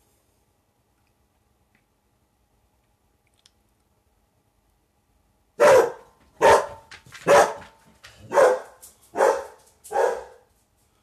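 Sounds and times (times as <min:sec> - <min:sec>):
dog barking loudly: 0:05.6 - 0:10.5.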